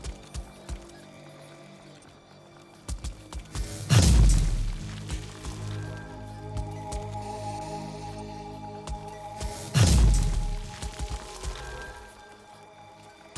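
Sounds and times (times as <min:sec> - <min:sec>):
thumper device pounding the earth for resources: 0:02.9 - 0:05.9, 0:09.4 - 0:11.7.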